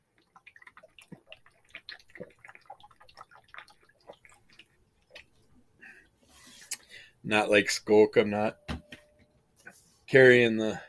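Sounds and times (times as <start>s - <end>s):
person drinking liquid from a bottle: 0.2s - 5.4s
speech: 7.2s - 8.6s, 10.1s - 10.8s.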